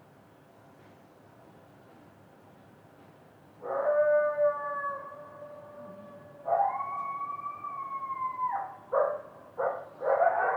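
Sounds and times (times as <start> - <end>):
low background noise: 0.0 - 10.5
coyote howling near a wildfire: 3.6 - 9.2.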